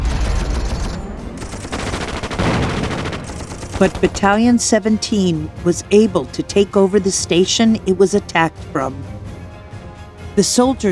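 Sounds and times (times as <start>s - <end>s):
sustained heavy machine gun fire: 1.4s - 4.6s
speech: 3.8s - 9.1s, 10.4s - 10.9s.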